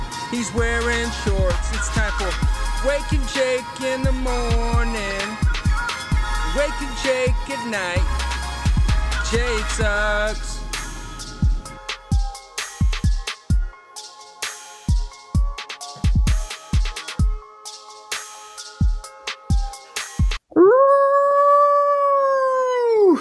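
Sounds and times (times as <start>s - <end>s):
bouncy music jingle with punchy drum hits: 0.0s - 20.4s
speech: 0.3s - 5.5s, 6.6s - 8.2s, 9.3s - 10.5s
dog howling: 20.5s - 23.1s.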